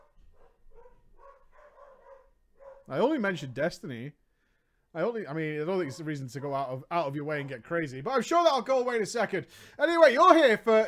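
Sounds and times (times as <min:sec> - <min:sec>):
dog whiny barking and yipping: 0:00.0 - 0:02.9, 0:05.8 - 0:06.7
speech: 0:02.9 - 0:04.2, 0:04.9 - 0:10.8.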